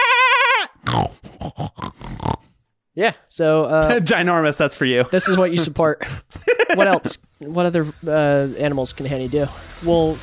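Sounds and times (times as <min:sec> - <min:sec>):
person in a pig face mask imitating a pig squeal: 0:00.0 - 0:02.5, 0:05.1 - 0:05.7
person in a pig face mask imitating pig grunts: 0:00.8 - 0:02.5, 0:05.2 - 0:05.7, 0:06.6 - 0:07.1
speech: 0:03.0 - 0:10.2
laughter: 0:05.1 - 0:07.2.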